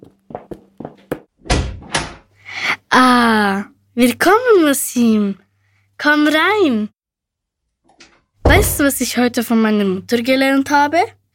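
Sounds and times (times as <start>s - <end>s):
door swinging and bumping with heavy thuds: 1.4s - 2.2s, 8.4s - 9.0s
speech: 2.9s - 5.4s, 6.0s - 7.0s, 8.0s - 11.2s.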